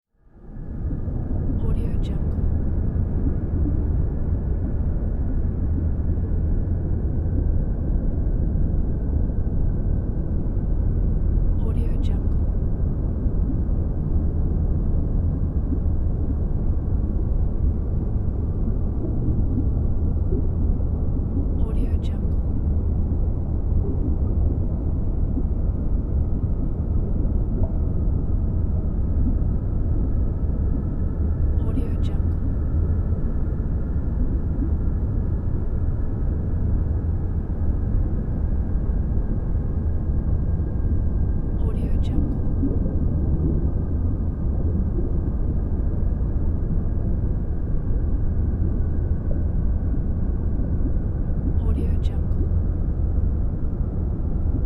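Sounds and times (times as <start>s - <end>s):
underwater ambience: 0.3s - 54.6s.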